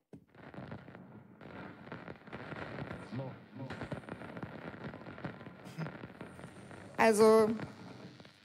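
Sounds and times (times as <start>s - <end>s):
radio static from tuning dial between stations: 0.4s - 8.4s
speech: 3.2s - 3.7s, 7.0s - 7.7s.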